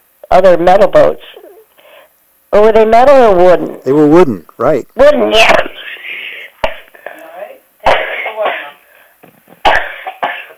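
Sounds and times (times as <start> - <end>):
speech: 0.4 - 1.4, 2.6 - 5.7
person with a recurring cough coughing: 7.8 - 8.8, 9.6 - 10.5.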